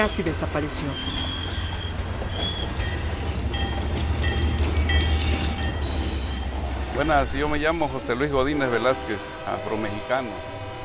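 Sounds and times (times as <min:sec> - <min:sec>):
speech: 0:00.0 - 0:01.4, 0:07.0 - 0:10.6
train rumbling along the rails of the isthmus railway in Mexico: 0:00.0 - 0:10.8
high metallic train wheel squeals: 0:00.9 - 0:06.4.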